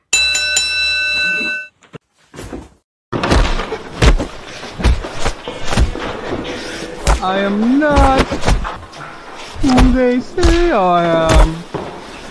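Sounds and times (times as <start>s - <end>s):
fight bell ringing to start a fight: 0.0s - 1.8s
heavy thuds: 2.5s - 12.2s
speech: 7.2s - 8.6s, 9.8s - 11.6s.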